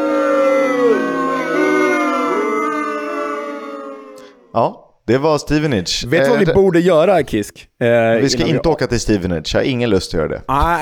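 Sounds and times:
crowd booing: 0.0s - 4.5s
speech: 4.6s - 10.7s.

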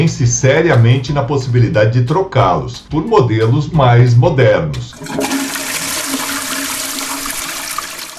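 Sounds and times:
speech: 0.0s - 5.4s
toilet flushing with close-coupled cistern: 4.9s - 8.1s.

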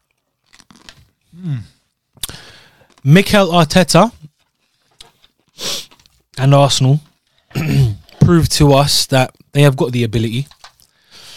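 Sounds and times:
person chewing food while eating: 0.0s - 1.2s
speech: 1.4s - 1.8s, 3.0s - 4.2s, 6.4s - 10.6s.

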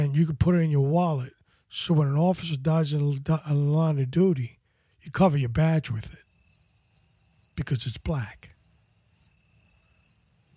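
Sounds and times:
speech: 0.2s - 6.2s, 7.6s - 8.5s
crickets chirping: 6.2s - 10.5s.

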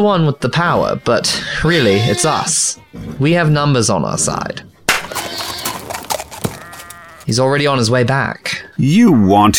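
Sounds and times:
speech: 0.0s - 5.6s, 7.3s - 9.5s
hooves clip-clopping on a hard surface: 4.9s - 7.5s
horse neighing: 5.0s - 7.3s.

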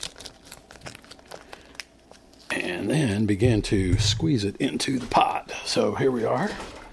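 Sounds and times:
plastic bag crinkling and rustling: 0.0s - 2.5s
speech: 2.7s - 6.8s.

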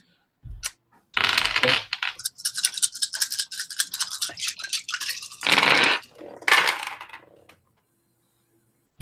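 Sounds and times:
dice rattling and rolling during a tabletop role-playing game: 1.2s - 7.5s.

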